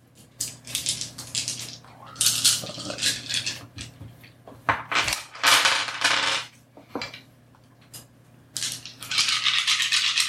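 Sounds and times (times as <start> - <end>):
ten dice rattled and rolled onto a table during a tabletop role-playing game: 0.4 - 3.9, 4.8 - 6.5, 8.6 - 10.2.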